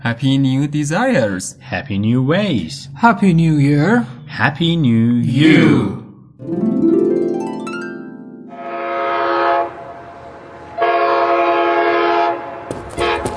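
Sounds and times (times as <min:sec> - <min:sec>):
speech: 0:00.0 - 0:07.0
train horn long sustained blasts: 0:08.5 - 0:13.3.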